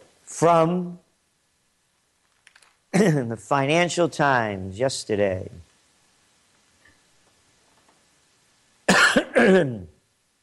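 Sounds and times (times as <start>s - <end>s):
speech: 0.4s - 1.0s, 2.9s - 5.7s, 9.4s - 9.9s
person coughing harshly: 3.0s - 3.3s, 8.9s - 9.9s.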